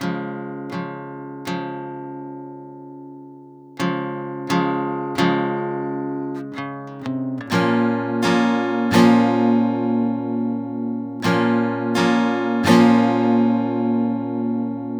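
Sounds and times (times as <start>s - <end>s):
guitar loop in A sharp minor: 0.0s - 14.9s.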